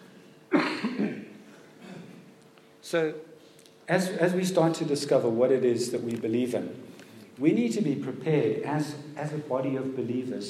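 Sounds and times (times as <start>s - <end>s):
loud harsh cough: 0.5s - 2.2s
speech: 2.9s - 3.3s, 3.9s - 10.4s.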